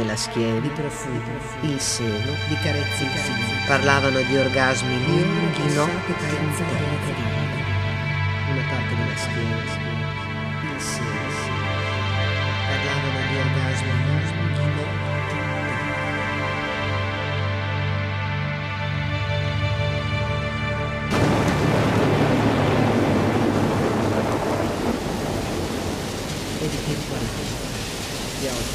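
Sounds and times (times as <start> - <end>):
heavy rain in a thunderstorm: 0.0 - 17.0, 21.1 - 28.7
sustained tonal drone: 0.0 - 27.7
speech: 0.1 - 7.6, 8.6 - 10.0
wind in a thunderstorm: 21.1 - 28.7.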